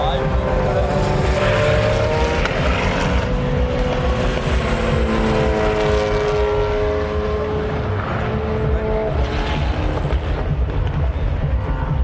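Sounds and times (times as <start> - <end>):
constant roar of engines: 0.0 - 12.0
Peugeot race car whistling past with a high thin whine: 1.3 - 7.5.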